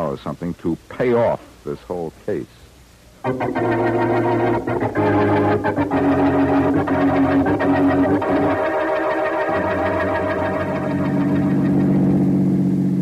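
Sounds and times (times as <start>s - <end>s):
speech: 0.1s - 2.6s, 3.2s - 8.8s
car engine humming while driving fast: 3.2s - 13.0s.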